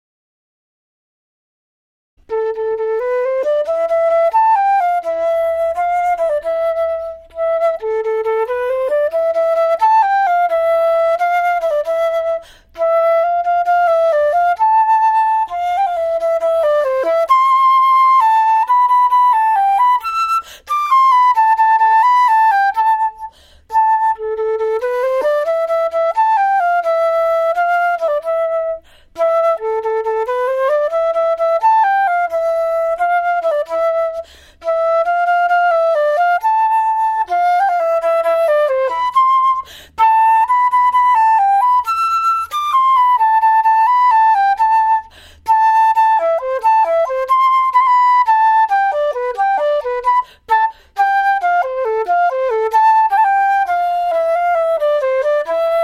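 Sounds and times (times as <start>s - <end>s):
flute playing a waltz: 2.2s - 55.8s.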